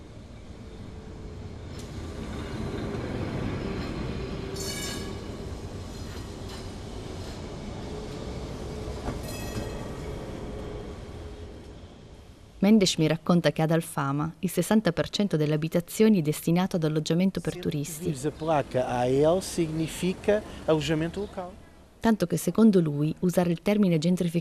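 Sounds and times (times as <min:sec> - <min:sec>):
electric tram moving slowly on rails: 0:00.0 - 0:24.3
high metallic squeals from rail vehicle wheels: 0:04.6 - 0:05.3
speech: 0:12.7 - 0:24.3.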